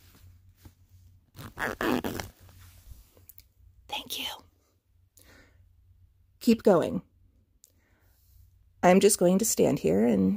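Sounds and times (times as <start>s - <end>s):
clothing zipper pulled as someone undresses: 1.3s - 2.6s
speech: 1.6s - 2.3s, 6.5s - 7.1s, 8.8s - 10.3s.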